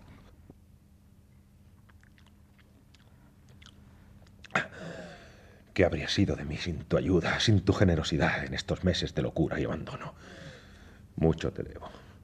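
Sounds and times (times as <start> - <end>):
low hum: 0.0 - 12.2
soft wet mouth clicks: 1.8 - 4.6
person drinking water: 1.8 - 4.7
loud breathy gasp: 4.6 - 5.6, 10.2 - 11.0
speech: 5.8 - 10.4, 11.2 - 12.0.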